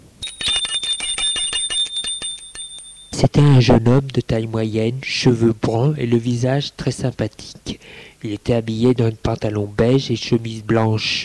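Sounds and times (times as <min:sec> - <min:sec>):
small bell rung at a gate: 0:00.2 - 0:03.7
speech: 0:03.2 - 0:11.2.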